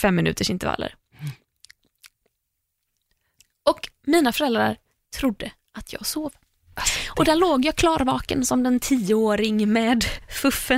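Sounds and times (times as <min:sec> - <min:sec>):
speech: 0:00.0 - 0:01.4, 0:03.7 - 0:10.7
voice imitating sleepy lip smacking: 0:01.2 - 0:04.0.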